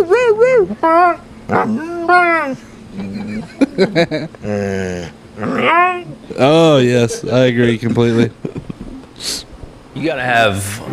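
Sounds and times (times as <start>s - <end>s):
dog whining and whimpering: 0.0s - 3.6s, 4.4s - 6.4s
speech: 0.0s - 8.4s, 9.2s - 9.4s, 10.0s - 10.9s
laughter: 2.9s - 5.1s, 7.5s - 9.0s.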